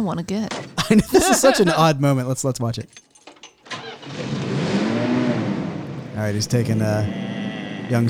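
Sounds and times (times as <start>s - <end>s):
speech: 0.0s - 3.1s, 6.2s - 7.2s, 7.9s - 8.0s
laughter: 0.7s - 2.0s
1957 Ford Fairlane engine starting and idling: 3.2s - 8.0s.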